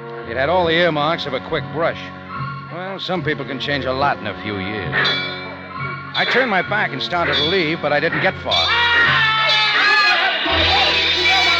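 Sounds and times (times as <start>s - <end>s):
speech: 0.3s - 5.4s, 6.1s - 9.2s
crowd shouting wildly: 7.2s - 11.5s.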